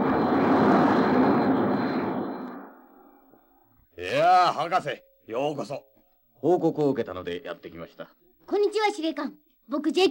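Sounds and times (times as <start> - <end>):
loud jet aircraft roaring: 0.0 - 3.4
speech: 4.5 - 10.1.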